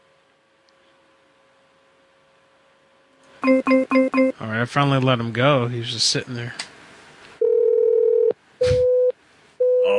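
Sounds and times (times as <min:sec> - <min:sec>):
speech: 0:03.4 - 0:06.7
off-hook tone from a home phone: 0:07.4 - 0:09.9.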